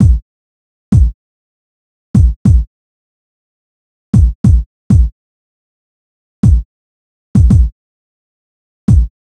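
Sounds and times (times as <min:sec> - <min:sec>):
hip hop kick drum: 0:00.0 - 0:00.2, 0:00.9 - 0:01.2, 0:02.2 - 0:02.7, 0:04.1 - 0:05.2, 0:06.4 - 0:06.7, 0:07.4 - 0:07.7, 0:08.9 - 0:09.2.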